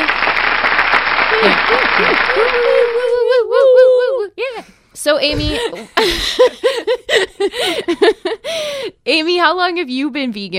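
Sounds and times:
dense steady applause: 0.0 - 3.2
drawn-out wavering cheer: 0.0 - 4.3
laughter: 1.3 - 4.2, 5.4 - 8.5
person whooping: 1.3 - 4.4
speech: 1.4 - 3.1, 4.6 - 10.5.

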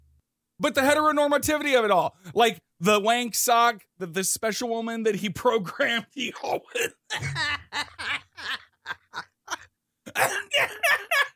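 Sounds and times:
speech: 0.6 - 8.1, 10.2 - 11.3
person having a coughing fit: 6.2 - 7.6, 10.1 - 11.3
breathy laugh-like sounds: 6.2 - 11.3.

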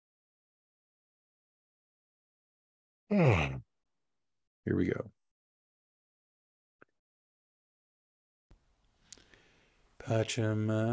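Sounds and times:
person yawning: 3.1 - 3.6
speech: 3.1 - 3.6, 4.7 - 5.2, 10.0 - 10.9.

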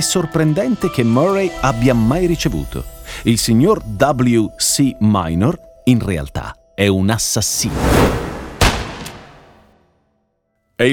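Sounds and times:
speech: 0.0 - 8.3
loud pistol shots: 8.6 - 9.6.

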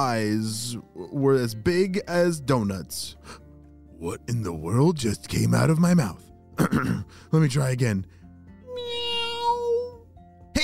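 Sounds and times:
speech: 0.0 - 3.4, 4.0 - 8.2
person imitating a cat's meow: 8.7 - 10.0.

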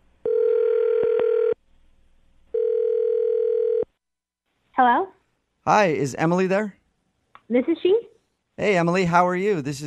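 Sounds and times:
steady telephone dial or ringback tone: 0.3 - 1.6, 2.5 - 3.9
speech: 5.7 - 6.8, 7.5 - 8.1, 8.6 - 9.8.

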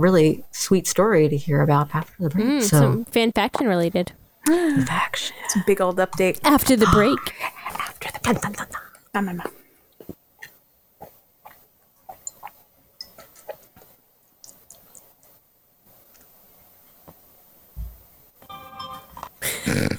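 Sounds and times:
speech: 0.0 - 9.6
alarm clock ringing to mark the end of a break: 18.5 - 19.2.

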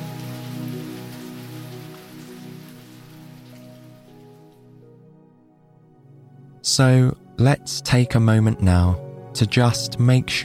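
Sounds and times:
steady soothing rain pattering on a surface: 0.0 - 4.7
soft sustained low musical tone: 0.0 - 10.4
speech: 6.6 - 10.4.

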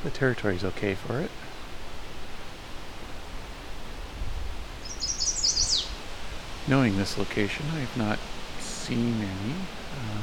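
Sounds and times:
speech: 0.0 - 1.6, 6.7 - 10.2
steady broadband hiss: 0.0 - 10.2
high-pitched bird call: 4.8 - 6.0.

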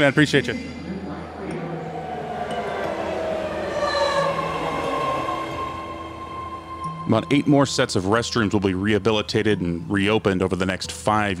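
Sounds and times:
speech: 0.0 - 0.8, 7.1 - 11.3
train arriving at station platform: 0.5 - 8.2
high metallic squealing of arriving train: 0.6 - 9.7.

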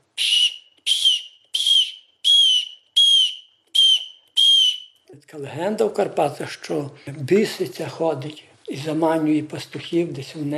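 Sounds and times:
hunting lure whistle imitating a mouse squeak to draw in a fox: 0.2 - 5.0
speech: 5.2 - 10.5.

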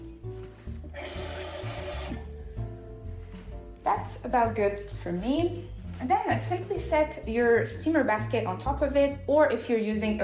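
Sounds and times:
water running from a tap into a saucepan: 1.0 - 2.2
speech: 3.9 - 10.2.

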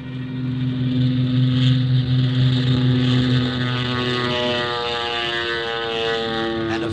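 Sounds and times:
small propeller plane engine droning during takeoff from a jungle airstrip: 0.0 - 6.9.

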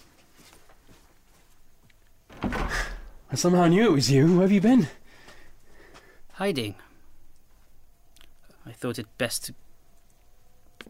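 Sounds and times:
door swinging shut with scrape, thud and rattle: 2.3 - 3.4
speech: 3.3 - 5.0, 6.4 - 6.9, 8.7 - 9.6.

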